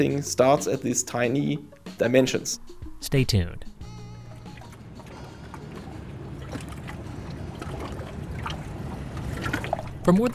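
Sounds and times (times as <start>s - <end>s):
speech: 0.0s - 3.8s, 10.1s - 10.3s
boat moving along a narrow canal in Hamburg Germany: 2.3s - 10.3s
water lapping in a canal: 2.4s - 10.3s
wind: 2.4s - 10.3s
splashes: 4.5s - 10.3s.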